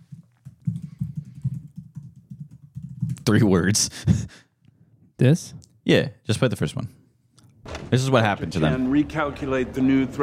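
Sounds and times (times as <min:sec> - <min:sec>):
typing on a computer keyboard: 0:00.2 - 0:03.3
speech: 0:03.3 - 0:04.4, 0:05.2 - 0:07.0, 0:07.9 - 0:10.2.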